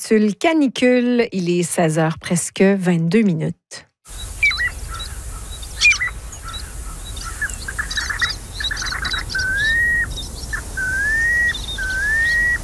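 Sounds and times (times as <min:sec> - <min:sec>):
speech: 0:00.0 - 0:04.3
piping plover sharp chirps and rapid chatter: 0:04.1 - 0:12.6.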